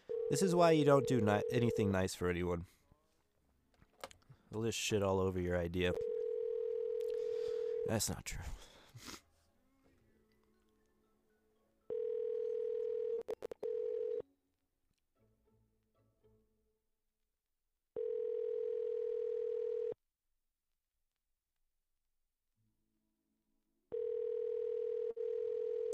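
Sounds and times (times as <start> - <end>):
outgoing phone call ringing tone through a handset: 0.0 - 2.1, 5.9 - 8.1, 11.9 - 14.2, 18.0 - 20.0, 23.9 - 25.9
speech: 0.3 - 2.8, 4.5 - 6.1, 7.9 - 9.2.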